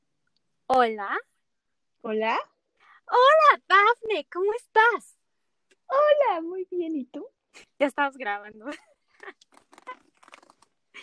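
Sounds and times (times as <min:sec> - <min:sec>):
speech: 0:00.7 - 0:01.3, 0:02.0 - 0:02.5, 0:03.1 - 0:05.2, 0:05.9 - 0:09.4
crisp food being chewed: 0:09.2 - 0:10.8.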